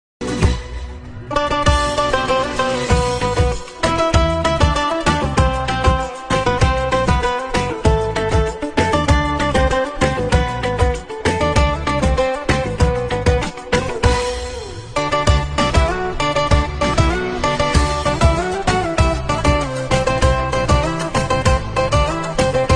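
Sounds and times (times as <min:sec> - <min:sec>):
instrumental guitar music: 0:00.2 - 0:22.7.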